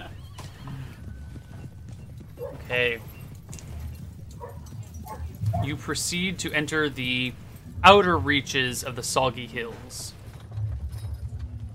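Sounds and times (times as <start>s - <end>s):
horse hooves clip-clopping while crossing a wide shallow river: 0.0s - 11.7s
low ambient rumble: 0.0s - 11.7s
speech: 2.7s - 3.1s, 5.6s - 10.2s.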